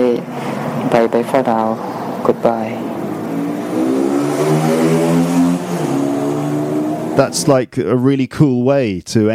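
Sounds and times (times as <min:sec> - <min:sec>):
speech: 0:01.0 - 0:02.9, 0:07.2 - 0:09.3
motorbike engine revving: 0:01.0 - 0:07.6.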